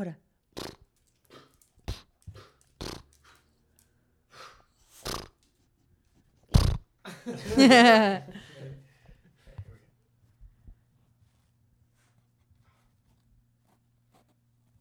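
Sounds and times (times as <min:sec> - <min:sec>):
speech: 0:00.0 - 0:00.2, 0:07.6 - 0:08.4
dog sneezing: 0:00.6 - 0:03.4, 0:04.3 - 0:05.4
laughter: 0:07.1 - 0:08.9.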